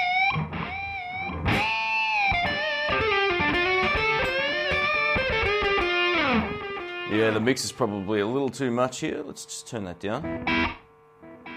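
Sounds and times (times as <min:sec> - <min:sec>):
electric guitar melodic line through a tube echo delay effect: 0:00.0 - 0:07.4
speech: 0:07.2 - 0:10.8.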